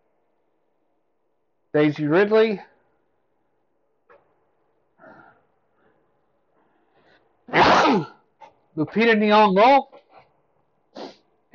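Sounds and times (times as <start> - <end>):
speech: 1.7 - 2.7, 8.8 - 10.0
person sneezing: 7.5 - 8.3, 11.0 - 11.2.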